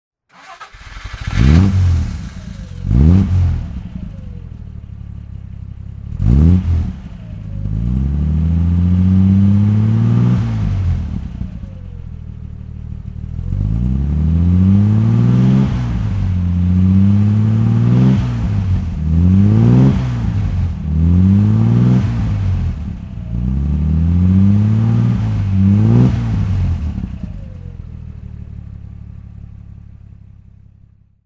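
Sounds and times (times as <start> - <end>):
Alvis TE21 DHC car engine throttle: 0.3 - 31.2.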